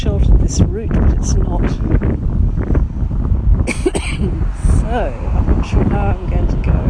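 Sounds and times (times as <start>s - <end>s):
strong wind buffeting the microphone on a street: 0.0s - 6.8s
speech: 0.5s - 2.6s, 3.7s - 6.8s
person coughing on a street: 3.7s - 4.4s.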